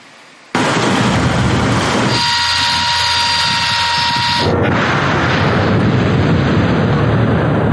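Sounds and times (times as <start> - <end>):
heavy sustained roar and rumble: 0.5 - 7.7
air assault corps artillery gun firing at an enemy target: 0.6 - 2.4, 4.4 - 7.7.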